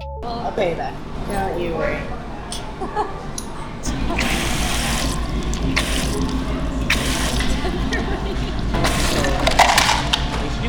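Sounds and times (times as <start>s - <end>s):
speech: 0.2s - 2.2s, 2.8s - 3.4s
laughter: 2.4s - 10.6s
soda pouring and fizzing: 3.9s - 10.2s.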